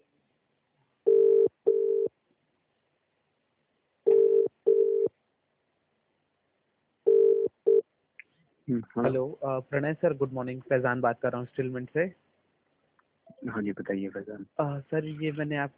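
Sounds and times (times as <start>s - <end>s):
phone ringing with double electronic tones: 1.1s - 2.1s, 4.1s - 5.1s, 7.1s - 7.8s
speech: 8.7s - 12.3s, 13.4s - 15.7s.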